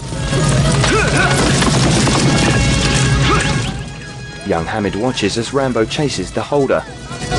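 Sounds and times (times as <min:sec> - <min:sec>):
many horses galloping with hooves pounding: 0:00.1 - 0:04.6
people shouting: 0:00.6 - 0:01.7, 0:03.0 - 0:03.8
speech: 0:04.5 - 0:07.2.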